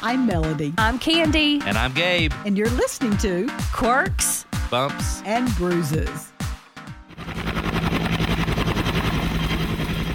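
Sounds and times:
speech: 0.0s - 6.3s
helicopter rotor chopping: 5.4s - 10.1s.

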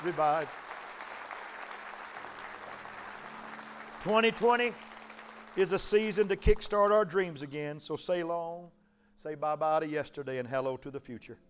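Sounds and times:
speech: 0.0s - 0.7s, 4.0s - 4.8s, 5.6s - 11.4s
crowded church audience clapping: 0.0s - 6.9s.

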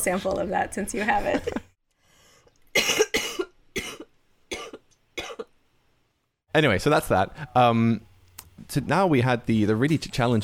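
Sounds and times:
speech: 0.0s - 1.7s, 6.6s - 10.4s
person coughing harsh chesty coughs: 2.8s - 5.5s.

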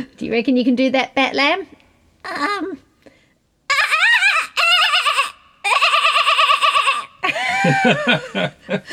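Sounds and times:
speech: 0.0s - 2.8s, 7.6s - 8.9s
person imitating a kookaburra call: 2.2s - 2.8s, 3.7s - 7.2s
laughter: 5.8s - 8.9s.

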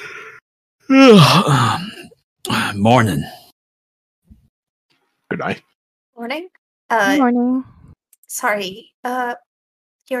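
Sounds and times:
big drawn-out voiced yawn: 0.9s - 2.7s
speech: 0.9s - 3.4s, 5.3s - 9.5s.

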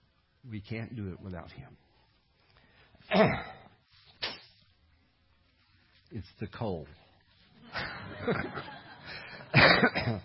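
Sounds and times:
speech: 0.4s - 1.9s, 3.1s - 3.6s, 6.1s - 7.0s, 7.7s - 8.8s, 9.7s - 10.2s
person coughing harshly: 3.1s - 3.7s, 9.5s - 10.2s
laughter: 7.6s - 10.2s.

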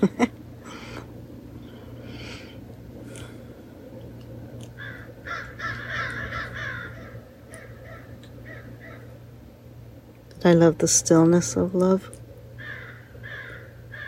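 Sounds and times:
speech: 0.0s - 0.3s, 10.4s - 12.2s
steady low hum: 0.0s - 14.0s
crows cawing and squawking: 4.8s - 9.2s, 12.6s - 14.0s.

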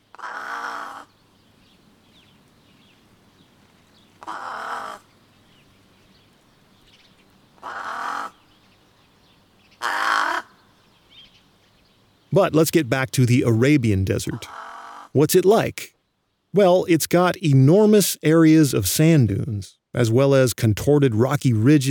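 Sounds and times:
brown-necked raven calling: 0.0s - 1.2s, 4.1s - 5.1s, 7.6s - 8.5s, 9.8s - 10.8s, 14.1s - 15.3s
speech: 12.3s - 15.9s, 16.5s - 21.8s.

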